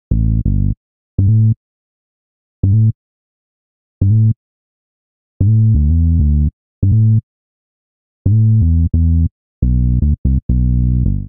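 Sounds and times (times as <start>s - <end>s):
bassline in A minor at 85 bpm: 0.1s - 1.6s, 2.6s - 3.0s, 4.0s - 4.4s, 5.4s - 7.2s, 8.3s - 11.2s.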